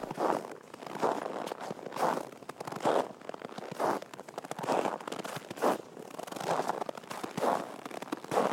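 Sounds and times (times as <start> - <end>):
footsteps crunching in snow at a walking pace: 0.0 - 8.5.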